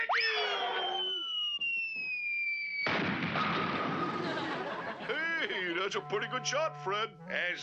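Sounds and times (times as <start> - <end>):
cartoon whistling boing-like tonal effects: 0.1 - 4.1
laughter: 4.0 - 5.8
speech: 5.9 - 7.6.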